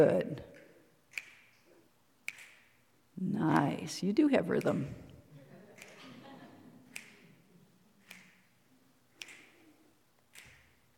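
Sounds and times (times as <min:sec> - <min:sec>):
speech: 0:00.0 - 0:00.5, 0:03.2 - 0:05.0
finger snaps: 0:00.5 - 0:02.8, 0:05.8 - 0:06.0, 0:06.9 - 0:07.4, 0:08.0 - 0:08.5, 0:09.2 - 0:10.8
laughter: 0:05.3 - 0:08.0.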